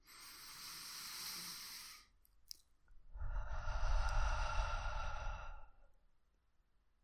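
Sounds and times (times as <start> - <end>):
slow deep breathing: 0.0 - 2.1, 3.1 - 6.0.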